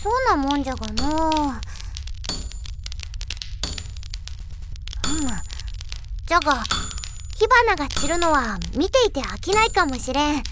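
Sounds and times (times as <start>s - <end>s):
speech: 0.0s - 1.7s, 6.3s - 6.8s, 7.4s - 10.5s
steady noise: 0.0s - 10.5s
hammer striking iron on an anvil: 1.0s - 1.6s, 2.3s - 2.9s, 3.6s - 5.6s, 6.7s - 8.6s, 9.5s - 10.0s.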